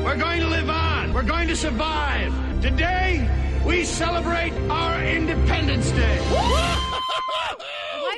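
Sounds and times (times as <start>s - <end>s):
speech: 0.1s - 6.9s
crowd yelling and whooping excitedly after a speech: 6.3s - 8.1s.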